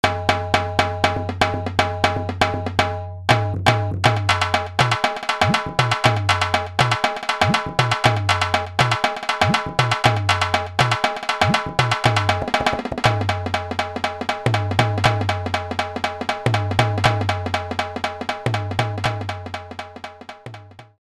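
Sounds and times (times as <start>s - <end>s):
dhol drum: 0.0s - 21.0s.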